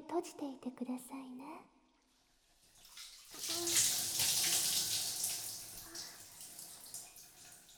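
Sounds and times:
speech: 0.1 - 1.7
running water wetting hair during a hair wash: 2.7 - 7.7.

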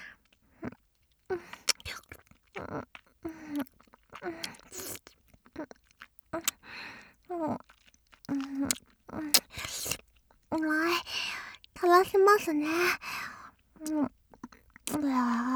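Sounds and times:
wet mouth sounds of saliva being gathered: 0.7 - 11.8, 13.8 - 15.4
speech: 12.4 - 13.0.

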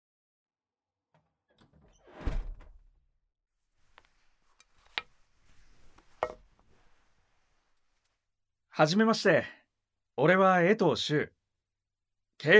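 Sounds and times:
just-unlocked door opening with a heavy thud and rumble: 1.2 - 3.0
speech: 8.8 - 9.6, 10.2 - 11.4, 12.4 - 12.5.

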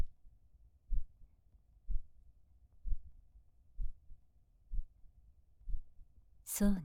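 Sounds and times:
woman's slow heartbeat heard against her chest during a hug: 0.9 - 1.2, 3.8 - 4.0, 4.7 - 4.9
speech: 6.5 - 6.8.

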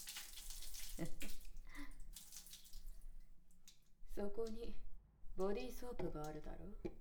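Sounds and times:
water pouring and splashing while rinsing a person's body: 0.0 - 3.8
speech: 1.0 - 1.4, 4.2 - 7.0.

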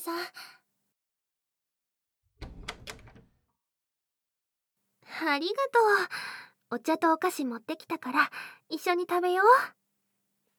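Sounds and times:
door opening with latch clicks and rattling slide: 2.4 - 3.5
speech: 5.2 - 9.8.

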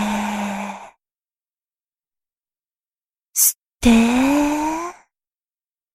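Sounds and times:
long breath taken in and let out during a relaxation exercise: 0.0 - 1.0, 3.4 - 5.1
speech: 3.4 - 4.2.

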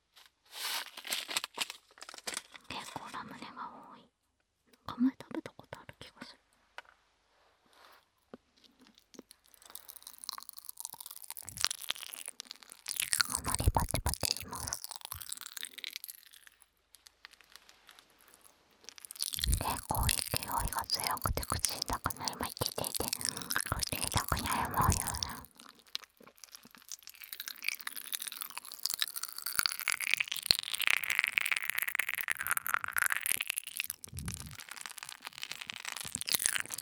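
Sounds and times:
plastic snack bag of ramune candy crinkling and tearing: 0.5 - 2.6, 8.7 - 36.7
soft whispering: 2.6 - 4.1, 4.9 - 6.4, 13.0 - 15.3, 19.2 - 25.7, 34.0 - 34.6
crunchy chewing of ramune candy: 8.6 - 17.4, 18.2 - 36.7.

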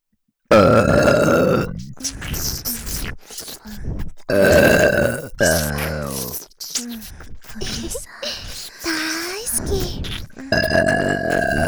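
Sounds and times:
speech: 0.5 - 1.1
long loud deep burps: 0.5 - 2.6, 4.3 - 6.3, 10.0 - 11.6
soft breathy grunting sounds: 0.5 - 11.6.

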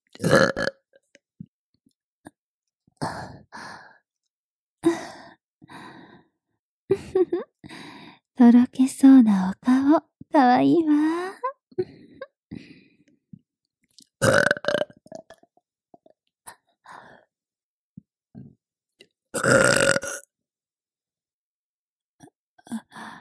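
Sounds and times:
woman burping: 0.2 - 0.8, 14.2 - 15.4, 19.3 - 20.3
speech: 8.4 - 11.9.

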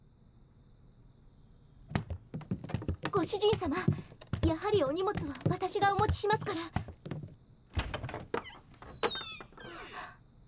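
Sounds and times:
door knocks and rattling clatters: 1.9 - 9.7
speech: 3.2 - 6.8
door opening: 4.2 - 10.1.

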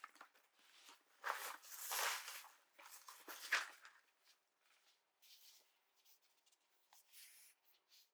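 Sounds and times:
taking something out of a bag: 0.7 - 4.1.

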